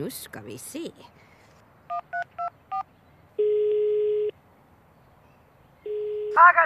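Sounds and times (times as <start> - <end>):
speech: 0.0 - 1.3, 6.4 - 6.6
long steady telephone ringing tones on the line: 3.4 - 4.4, 5.8 - 6.6
voice answering a telephone call: 6.2 - 6.6.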